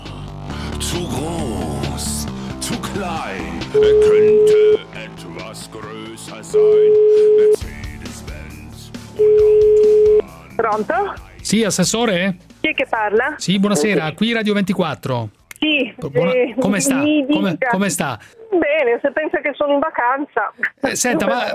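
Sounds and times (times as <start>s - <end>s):
speech: 0.8s - 2.1s, 3.0s - 4.9s, 5.5s - 7.6s, 10.6s - 21.5s
telephone ringback tones from an outgoing call: 6.6s - 7.6s, 9.2s - 10.2s
continuous noise: 12.3s - 21.5s.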